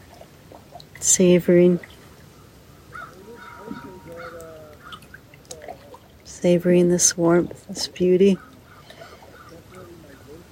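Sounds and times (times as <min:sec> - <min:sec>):
loons calling in the distance: 0:00.0 - 0:10.5
speech: 0:01.0 - 0:01.9, 0:06.4 - 0:08.5
harsh bird calls: 0:02.2 - 0:06.1, 0:08.2 - 0:10.5.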